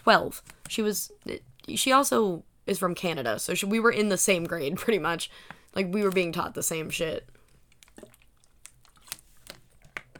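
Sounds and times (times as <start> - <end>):
speech: 0.0 - 7.4
person sipping and swallowing water: 7.3 - 10.0.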